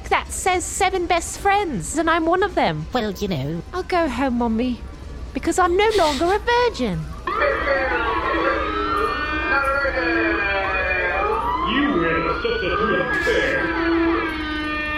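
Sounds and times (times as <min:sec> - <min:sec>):
speech: 0:00.4 - 0:08.1
siren-like alarm with overlapping sweeping tones: 0:05.9 - 0:14.9.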